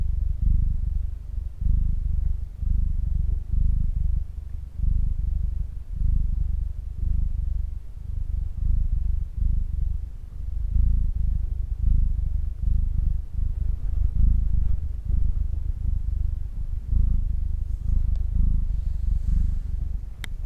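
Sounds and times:
domestic cat purring steadily: 0.0 - 20.4.

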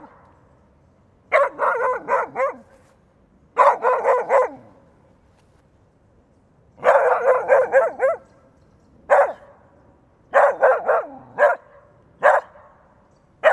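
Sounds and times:
French poodle barking: 1.3 - 2.7, 3.6 - 4.7, 6.8 - 8.3, 9.1 - 9.5, 10.3 - 12.8.

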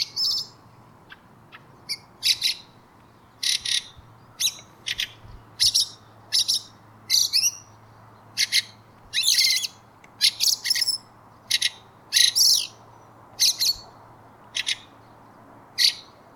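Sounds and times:
bird buzzy chirps: 0.0 - 12.8.

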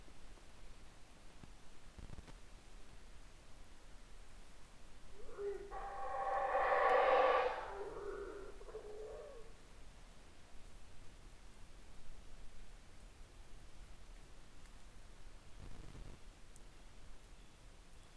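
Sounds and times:
howler monkey howling: 5.2 - 9.5.

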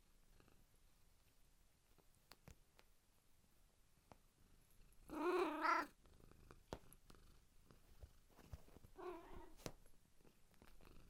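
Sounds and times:
faint clicks and taps: 1.2 - 3.0, 4.0 - 4.3, 6.5 - 11.0
cat giving a short upward-bending meow: 5.1 - 5.9, 9.0 - 9.6.

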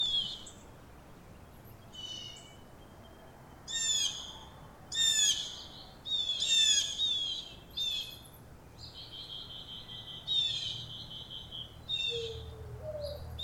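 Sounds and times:
birds singing in a park: 0.0 - 13.4.

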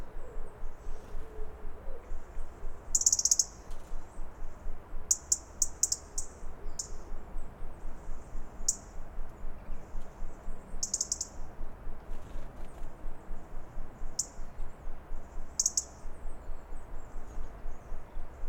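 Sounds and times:
robin uttering high thin alarm notes: 0.0 - 11.7, 13.0 - 18.4
rhythmic throbbing low noise: 4.0 - 12.1, 12.9 - 18.4.

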